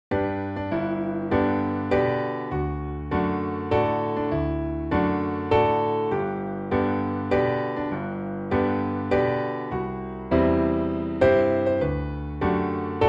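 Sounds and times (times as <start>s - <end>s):
piano piece in G major: 0.1s - 13.0s.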